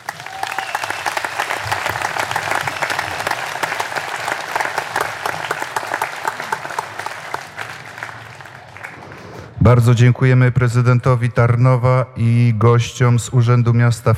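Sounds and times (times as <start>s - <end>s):
large crowd clapping outdoors after a patriotic service: 0.0s - 9.6s
speech: 9.7s - 14.1s.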